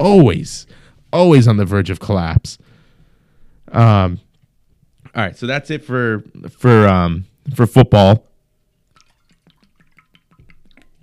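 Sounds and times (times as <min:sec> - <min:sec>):
speech: 0:00.0 - 0:02.6, 0:03.7 - 0:04.2, 0:05.2 - 0:08.3
person sipping water: 0:08.8 - 0:11.0.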